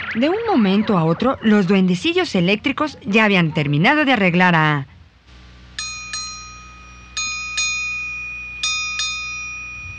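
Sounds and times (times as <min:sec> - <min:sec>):
speech: 0:00.1 - 0:04.9
small bell ringing: 0:05.8 - 0:09.9.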